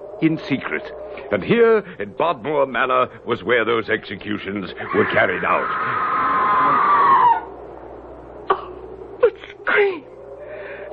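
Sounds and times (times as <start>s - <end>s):
speech: 0.2s - 6.3s
human scream rising into a long wavering wail: 4.8s - 7.4s.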